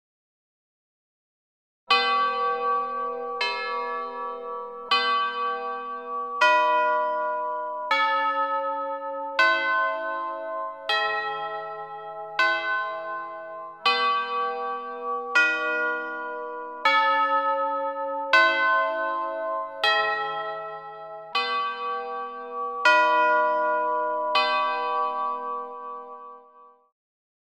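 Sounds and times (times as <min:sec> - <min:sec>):
large bells ringing: 0:01.9 - 0:26.6.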